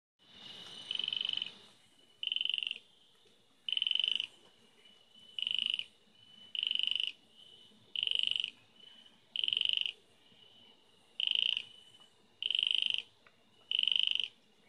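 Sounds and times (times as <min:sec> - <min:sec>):
Parapelophryne scalpta calling: 0:00.7 - 0:01.6, 0:02.2 - 0:03.0, 0:03.7 - 0:04.4, 0:05.2 - 0:07.2, 0:07.9 - 0:08.6, 0:09.3 - 0:10.0, 0:11.2 - 0:11.8, 0:12.4 - 0:14.4.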